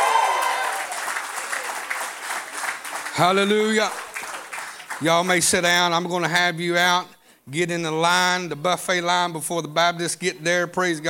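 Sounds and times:
church audience shouting excitedly: 0.0s - 1.7s
church audience clapping: 0.0s - 5.9s
speech: 3.2s - 4.0s, 5.0s - 11.0s.

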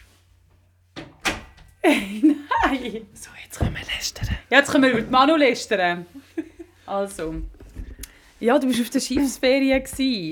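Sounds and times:
door pushed shut with closing thud: 1.0s - 1.8s
laughter: 1.8s - 3.1s, 6.1s - 6.8s
speech: 1.9s - 7.6s, 8.4s - 10.3s.

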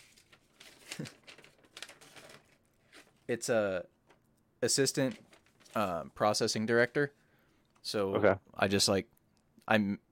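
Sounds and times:
sheets of paper rustling and crinkling: 0.0s - 3.4s, 4.8s - 7.0s
speech: 1.0s - 1.2s, 3.3s - 4.0s, 4.6s - 7.2s, 7.8s - 10.0s.

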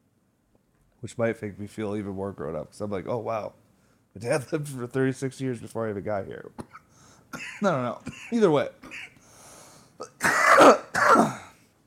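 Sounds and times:
speech: 1.0s - 3.6s, 4.2s - 9.1s
person coughing: 6.6s - 9.2s, 10.0s - 11.6s.

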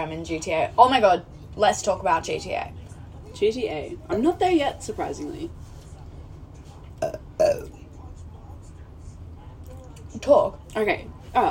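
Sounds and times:
speech: 0.0s - 5.7s, 10.2s - 11.4s
throaty burps: 7.0s - 7.8s.

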